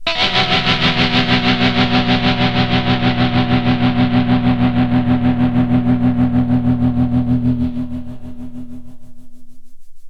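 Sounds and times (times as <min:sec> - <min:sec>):
dirty guitar: 0:00.0 - 0:09.4.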